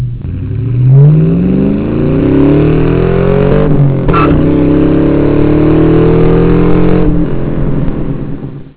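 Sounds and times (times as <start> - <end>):
tire chirp: 0.0 - 8.7.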